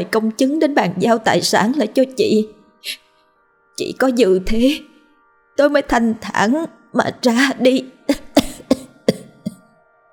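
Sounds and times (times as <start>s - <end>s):
speech: 0.0s - 3.0s, 3.8s - 4.9s, 5.6s - 8.2s
gravely ill woman coughing heavily: 8.1s - 9.6s.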